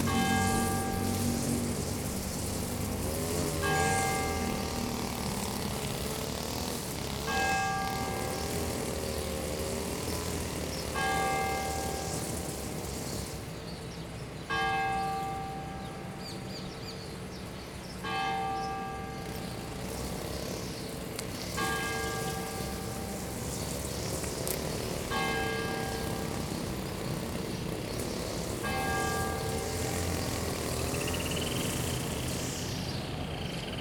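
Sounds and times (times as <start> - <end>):
parish church bells in a central plaza: 0.0 - 2.2, 2.8 - 5.7, 7.1 - 12.9, 14.4 - 17.2, 18.0 - 20.3, 21.5 - 23.5, 25.0 - 30.7
lawn mower: 0.0 - 33.7.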